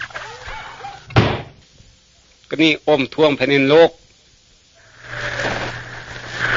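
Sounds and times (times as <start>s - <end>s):
door slamming: 1.1s - 1.5s
speech: 2.5s - 4.0s.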